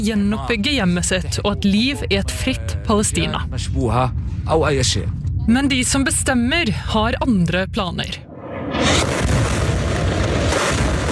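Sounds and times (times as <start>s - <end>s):
speech: 0.0s - 8.2s
bombs exploding over Gaza City: 8.3s - 11.1s.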